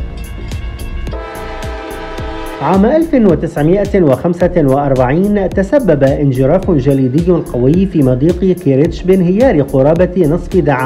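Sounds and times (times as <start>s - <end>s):
loud sustained train horn blaring: 1.1s - 3.3s
speech: 2.6s - 10.8s.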